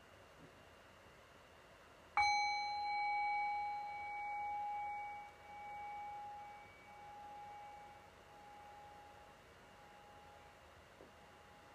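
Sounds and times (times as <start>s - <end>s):
meditation bell struck to mark the end of a meditation practice: 2.2s - 10.7s.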